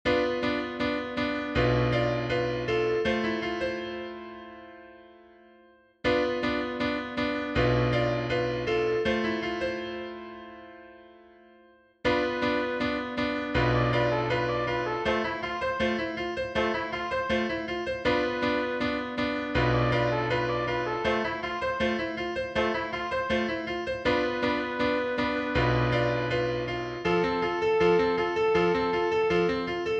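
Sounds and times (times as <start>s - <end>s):
piano: 0.0s - 29.9s
trumpet: 12.1s - 29.1s.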